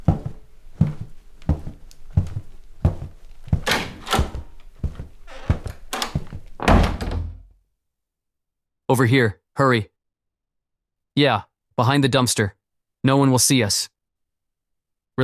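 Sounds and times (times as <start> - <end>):
back door opening and shutting: 3.5 - 7.5
heavy back door closing bang: 3.6 - 4.6, 6.0 - 7.5
speech: 8.9 - 9.9, 11.2 - 14.0.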